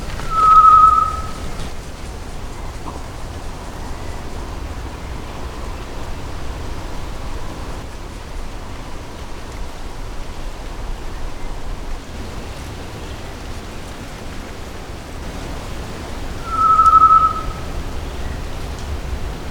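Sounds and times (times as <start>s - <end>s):
Tinamus solitarius calling: 0.2s - 1.7s, 15.2s - 19.4s.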